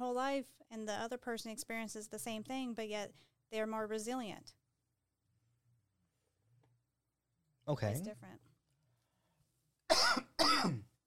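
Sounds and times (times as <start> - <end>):
speech: 0.0 - 4.6, 7.7 - 8.5, 10.4 - 10.9
rough throaty coughs: 9.9 - 10.9.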